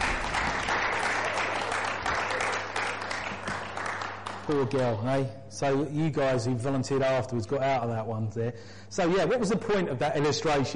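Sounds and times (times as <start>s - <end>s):
sizeable crowd applauding: 0.0s - 5.0s
speech: 4.5s - 10.7s.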